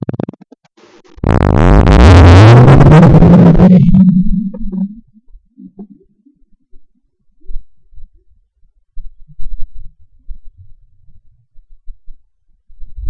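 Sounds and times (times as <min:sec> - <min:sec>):
doppler radar: 0:01.2 - 0:05.8.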